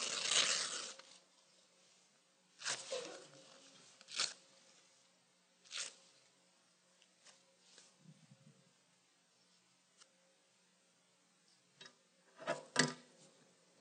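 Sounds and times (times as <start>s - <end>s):
paper being ripped into pieces: 0.0s - 1.2s, 2.6s - 3.4s, 4.0s - 4.4s, 5.7s - 6.0s.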